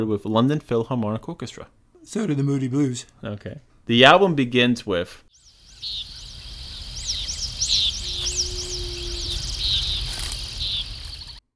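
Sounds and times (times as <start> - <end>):
speech: 0.0 - 5.2, 5.8 - 6.1
crickets chirping: 5.4 - 11.4.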